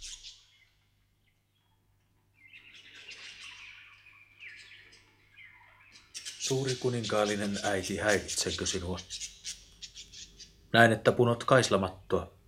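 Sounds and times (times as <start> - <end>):
several small caged birds chirping and twittering: 0.0 - 12.4
speech: 6.5 - 9.3, 10.7 - 12.4.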